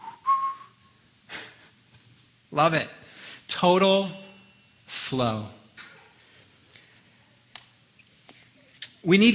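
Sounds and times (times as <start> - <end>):
rock climber whistling while climbing: 0.0 - 0.8
speech: 2.6 - 4.2, 4.9 - 5.6, 9.0 - 9.3.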